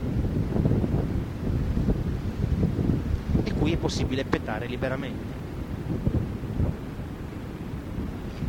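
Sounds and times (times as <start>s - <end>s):
low continuous rumble of sea and water heard from a ferry: 0.0s - 8.4s
steady wind buffeting the microphone on a ferry: 0.0s - 8.4s
speech: 3.7s - 5.4s.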